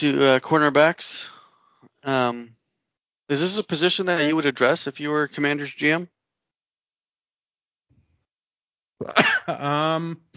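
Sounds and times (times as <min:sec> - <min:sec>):
speech: 0:00.0 - 0:01.3, 0:02.0 - 0:02.6, 0:03.3 - 0:06.2, 0:09.0 - 0:10.3
single harsh cough: 0:09.0 - 0:10.3
strained voiced throat-clearing rasp: 0:09.0 - 0:10.3.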